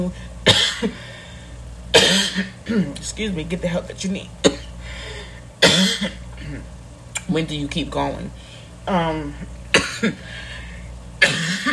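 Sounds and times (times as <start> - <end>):
speech: 0.0 - 1.0, 2.7 - 4.4, 5.8 - 6.7, 7.3 - 10.5
person coughing: 0.4 - 1.1, 1.9 - 2.9, 4.4 - 4.8, 5.6 - 6.7, 9.7 - 10.4, 11.2 - 11.7.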